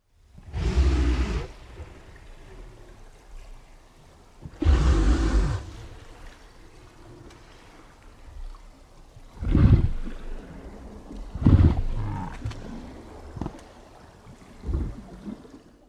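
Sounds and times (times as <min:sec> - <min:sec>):
right whale sounds: 0:00.4 - 0:03.3, 0:04.4 - 0:07.9, 0:09.3 - 0:13.6.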